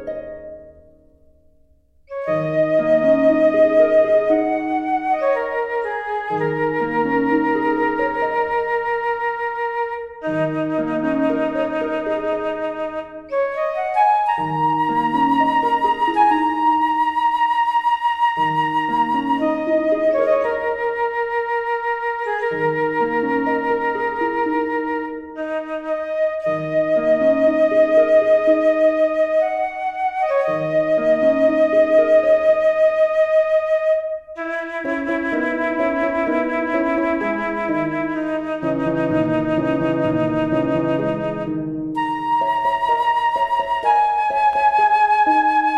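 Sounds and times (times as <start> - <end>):
flute note G: 2.1 - 45.7.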